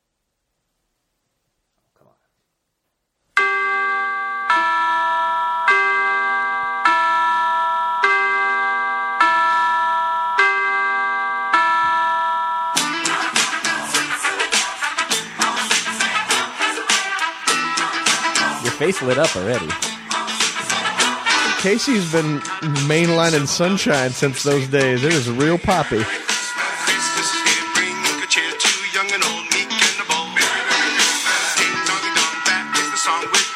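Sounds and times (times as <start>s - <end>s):
bright ringing bell tones: 3.4s - 13.0s, 21.0s - 24.4s, 31.7s - 33.5s
upbeat pop band with drums playing Christmas song cover: 12.8s - 33.5s
speech: 18.9s - 19.9s, 21.6s - 26.2s.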